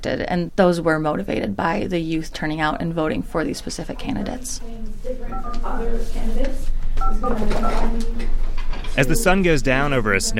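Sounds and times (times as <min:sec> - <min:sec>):
speech: 0:00.0 - 0:10.3
steady murmur of people talking in a student union: 0:03.7 - 0:10.3
short electronic phone keypad tones from volunteers dialing: 0:05.2 - 0:06.1, 0:07.0 - 0:08.1.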